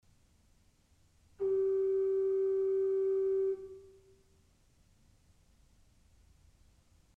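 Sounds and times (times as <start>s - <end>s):
Principal 4' organ pipe playing G: 1.4s - 4.0s.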